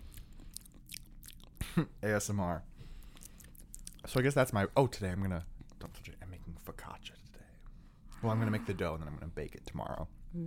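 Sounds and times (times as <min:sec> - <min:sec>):
chewing food close to microphone: 0:00.0 - 0:01.6, 0:03.0 - 0:04.1
speech: 0:01.8 - 0:02.7, 0:04.0 - 0:06.2, 0:08.2 - 0:10.4.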